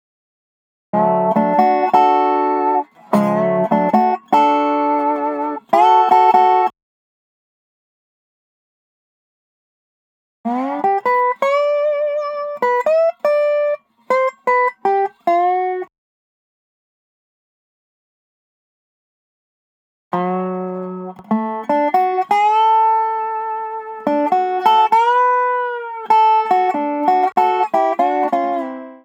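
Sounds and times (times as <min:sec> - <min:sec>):
Dobro resonator guitar: 0:01.0 - 0:06.7, 0:10.5 - 0:15.9, 0:20.1 - 0:29.0.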